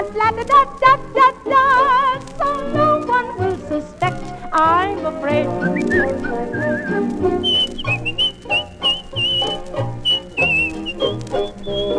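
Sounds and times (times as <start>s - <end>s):
speech: 0.0s - 1.8s
steady instrumental accompaniment: 0.0s - 11.9s
person whistling a bright cheerful tune: 5.6s - 11.9s.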